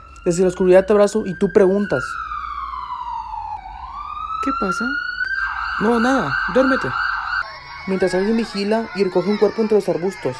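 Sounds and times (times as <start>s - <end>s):
ambulance siren wailing as it passes: 0.0s - 10.3s
speech: 0.2s - 2.3s, 4.5s - 5.1s, 5.8s - 7.0s, 7.9s - 10.3s.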